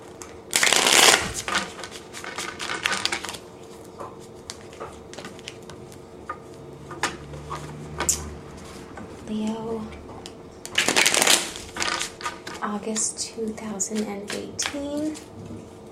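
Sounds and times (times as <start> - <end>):
deck of tarot cards riffled: 0.5 - 3.4, 10.8 - 12.6
speech: 12.9 - 15.7.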